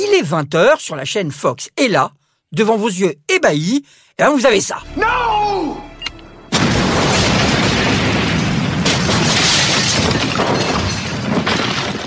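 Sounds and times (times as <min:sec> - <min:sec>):
speech: 0:00.0 - 0:05.7
debris-like crashes: 0:06.5 - 0:12.0
huge sustained explosion from a TV show: 0:06.5 - 0:12.0.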